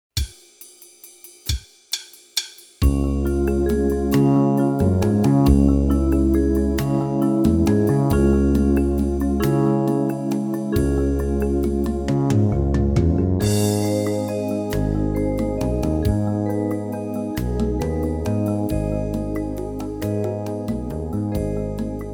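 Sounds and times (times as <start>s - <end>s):
major and minor triad chords: 2.8s - 22.1s.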